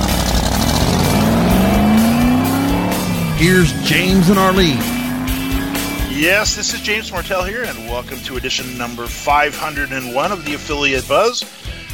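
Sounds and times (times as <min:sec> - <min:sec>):
1965 Shelby Cobra engine roaring while racing flat out: 0:00.0 - 0:09.1
speech: 0:03.4 - 0:05.0, 0:06.2 - 0:11.8.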